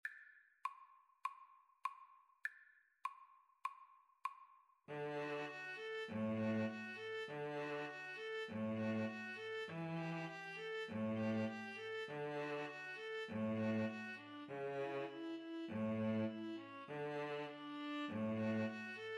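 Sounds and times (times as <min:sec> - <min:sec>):
string trio playing Neapolitan style: 0:04.9 - 0:19.1.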